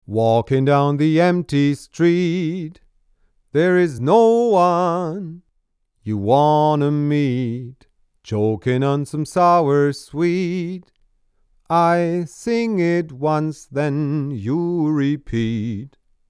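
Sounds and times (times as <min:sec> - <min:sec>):
male vocal recorded with Bock 251 microphone: 0:00.0 - 0:02.9, 0:03.5 - 0:11.0, 0:11.7 - 0:16.0.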